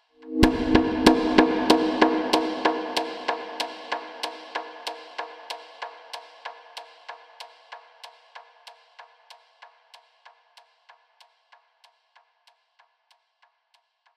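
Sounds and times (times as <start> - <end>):
percussion: 0.0 - 14.1
conga drum and percussion rhythm: 0.4 - 4.9.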